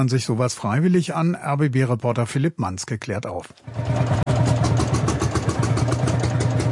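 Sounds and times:
speech: 0:00.0 - 0:04.2
old tractor engines chugging and rattling: 0:03.7 - 0:06.7.

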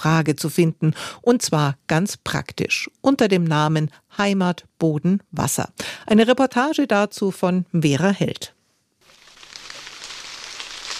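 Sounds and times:
speech: 0:00.0 - 0:08.6
light drizzle pattering on a maize field in Franconia: 0:09.0 - 0:10.9.

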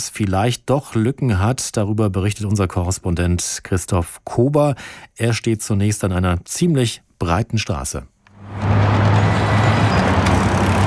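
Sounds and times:
speech: 0:00.0 - 0:08.8
dense road traffic of cars and trucks at eight-lane intersection in Beijing: 0:08.3 - 0:10.8.

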